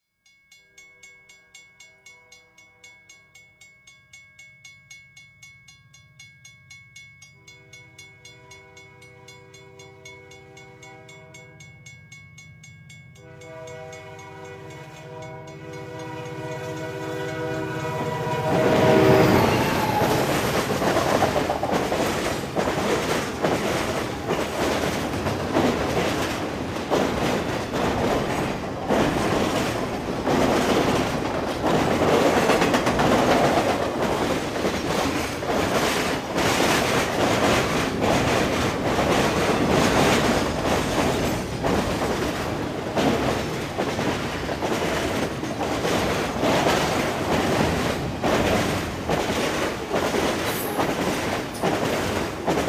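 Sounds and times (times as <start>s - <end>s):
railway crossing signal: 0.3s - 52.5s.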